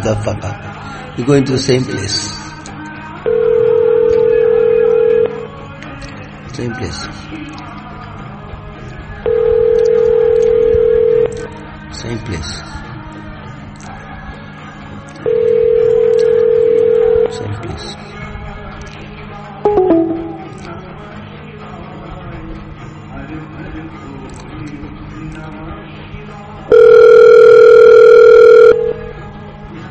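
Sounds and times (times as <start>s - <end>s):
speech: 0.1s - 2.4s, 6.6s - 7.4s, 12.0s - 12.8s
steady telephone dial tone: 3.3s - 5.4s, 9.3s - 11.3s, 15.3s - 17.3s, 26.7s - 29.0s.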